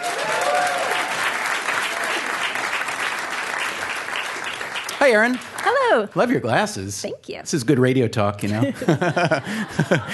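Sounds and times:
faint cheer or whoop: 0.0 - 2.4
crowd clapping: 0.0 - 6.3
speech: 5.0 - 10.1
laughter: 8.4 - 10.1.

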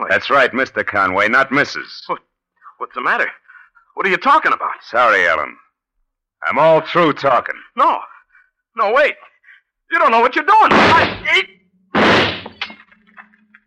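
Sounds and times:
speech: 0.1 - 3.4, 4.0 - 5.6, 6.4 - 8.1, 8.8 - 9.3, 9.9 - 12.3
drinking glass shattering against a tabletop: 12.0 - 12.9.

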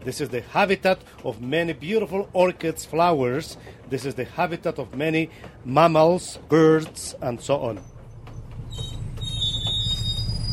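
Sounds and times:
speech: 0.0 - 7.9
train pulling into a station rolling rumble: 0.0 - 10.5
high metallic train wheel squeals: 7.8 - 10.5.

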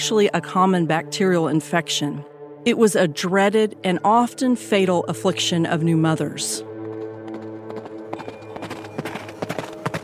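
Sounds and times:
speech: 0.0 - 6.7
galloping horse hooves sound effect: 6.6 - 10.0.

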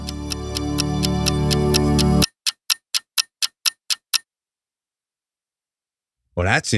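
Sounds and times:
clock ticking: 0.0 - 4.2
speech: 6.4 - 6.7.

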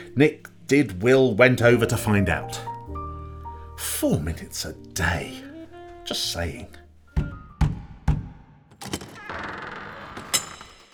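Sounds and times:
speech: 0.2 - 2.7, 3.8 - 5.5, 6.1 - 7.3
firm knocks on a door: 7.2 - 8.4
door swinging open with a rushing scrape: 8.7 - 10.9.

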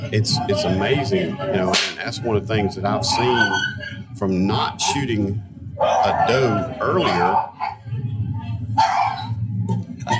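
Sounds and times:
speech: 0.1 - 7.5
bird dogs barking excitedly: 2.8 - 5.2, 5.8 - 8.0, 8.8 - 10.1.

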